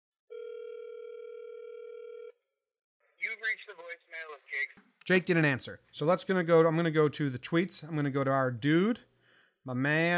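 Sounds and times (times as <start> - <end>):
ringback tone on an outgoing phone call: 0.3 - 2.4
speech: 3.2 - 10.1.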